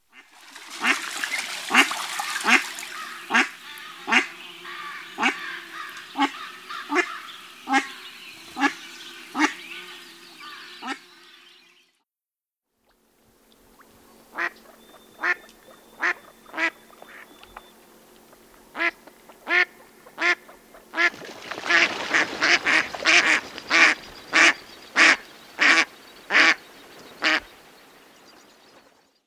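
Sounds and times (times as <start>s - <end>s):
American black duck calling: 1.7s - 8.0s, 14.3s - 17.3s, 18.8s - 21.1s, 21.7s - 26.6s.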